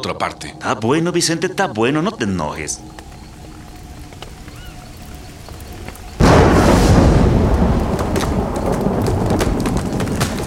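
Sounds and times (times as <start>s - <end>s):
speech: 0.0s - 3.1s
heavy rain pouring down with a deep rumbling undertone: 1.8s - 10.4s.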